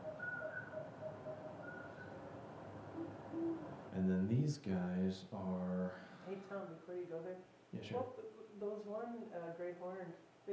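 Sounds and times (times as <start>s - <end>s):
common poorwill calling at night: 0.0s - 4.1s
speech: 4.0s - 10.5s.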